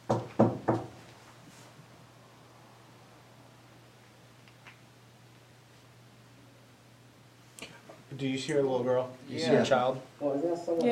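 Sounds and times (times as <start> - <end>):
firm knocks on a wooden surface: 0.0 - 1.0
speech: 7.6 - 10.9.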